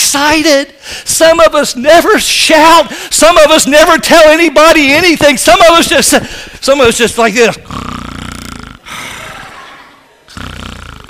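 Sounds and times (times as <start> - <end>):
speech: 0.1 - 7.9
voice imitating loud buzzy rattling snoring: 7.6 - 9.5, 10.3 - 11.0.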